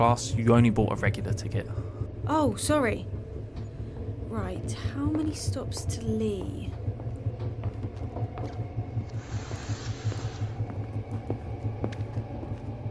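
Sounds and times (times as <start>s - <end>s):
speech: 0.0s - 3.2s, 4.3s - 6.8s
train rumbling as it slows into a station: 0.0s - 12.8s
hissing air: 9.1s - 10.7s.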